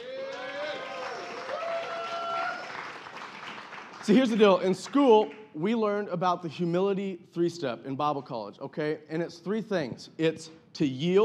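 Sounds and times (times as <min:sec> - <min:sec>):
voices cheering and calling out: 0:00.0 - 0:03.0
audience applause: 0:00.0 - 0:04.5
speech: 0:04.0 - 0:11.2.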